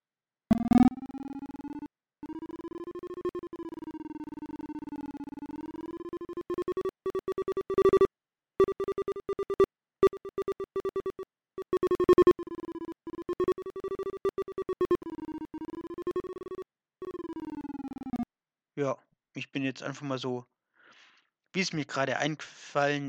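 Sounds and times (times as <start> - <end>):
electronic hum gliding in pitch: 0.5 - 18.3
screen reader tones on a Windows computer as the pointer moves across desktop icons: 2.4 - 18.2
speech: 18.8 - 20.6, 21.5 - 23.0.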